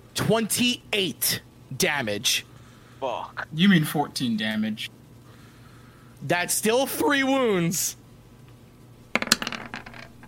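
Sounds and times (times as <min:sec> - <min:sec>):
speech: 0:00.3 - 0:05.0, 0:06.2 - 0:08.0
dice clattering across a hard surface: 0:09.1 - 0:10.2.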